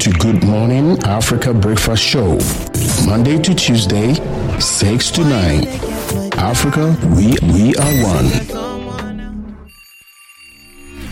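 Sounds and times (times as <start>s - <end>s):
speech: 0.5s - 8.6s
alarm ringing: 7.7s - 8.5s, 9.6s - 11.1s.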